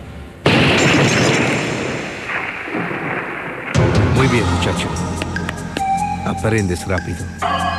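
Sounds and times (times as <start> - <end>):
gunshot: 0.4 - 4.4
speech: 4.3 - 5.2, 6.2 - 7.6.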